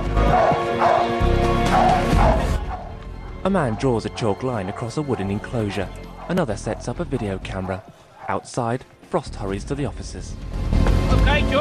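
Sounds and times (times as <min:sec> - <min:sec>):
dog barking loudly in a cage: 0:00.2 - 0:04.0, 0:05.7 - 0:08.5
speech: 0:03.4 - 0:11.5.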